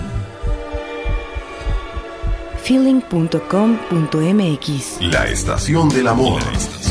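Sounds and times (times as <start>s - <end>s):
heartbeat thumping in low lub-dub pairs: 0.0s - 3.3s
speech: 2.7s - 6.8s.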